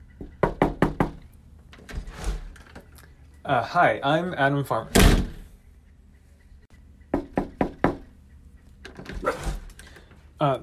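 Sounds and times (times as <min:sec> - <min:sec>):
firm knocks on a wooden door: 0:00.2 - 0:01.2, 0:07.1 - 0:08.1
speech: 0:03.5 - 0:05.1.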